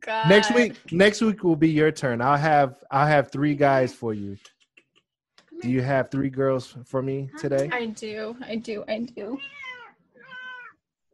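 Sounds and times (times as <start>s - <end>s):
speech: 0.0s - 4.6s, 5.6s - 9.6s
cat meowing: 9.4s - 10.8s.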